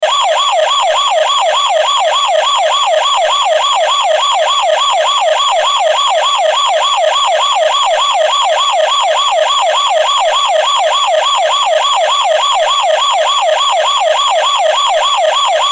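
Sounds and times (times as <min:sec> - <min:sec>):
toy car police siren: 0:00.0 - 0:15.7.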